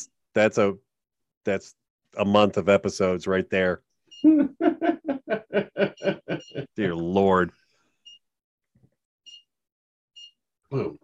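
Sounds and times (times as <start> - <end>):
speech: 0.0 - 0.8, 1.4 - 7.6, 10.7 - 11.0
laughter: 4.3 - 6.8
short bright buzzy electronic beeps: 8.0 - 8.3, 9.2 - 9.6, 10.2 - 10.5.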